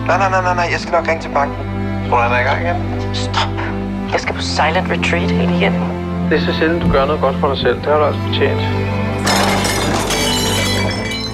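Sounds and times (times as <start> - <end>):
speech: 0.1 - 9.1
glass bottles clinking together: 9.2 - 11.3.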